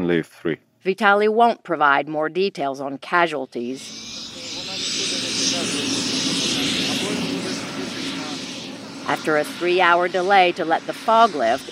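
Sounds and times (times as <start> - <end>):
speech: 0.0 - 4.3, 9.1 - 11.7
military helicopter engines and rotors roaring: 3.5 - 11.7.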